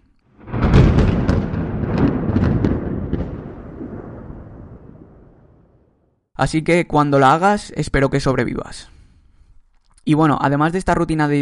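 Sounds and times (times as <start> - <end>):
deep rolling thunder crackling with sharp bursts: 0.3 - 6.2
speech: 6.4 - 8.9, 10.1 - 11.4.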